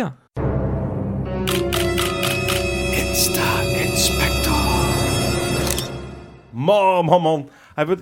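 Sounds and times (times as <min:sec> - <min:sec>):
speech: 0:00.0 - 0:00.2, 0:03.0 - 0:04.5, 0:06.6 - 0:08.0
short segment jingle with tonal bed: 0:00.4 - 0:06.6
rhythmic camera-shutter-like clicks: 0:01.5 - 0:02.6.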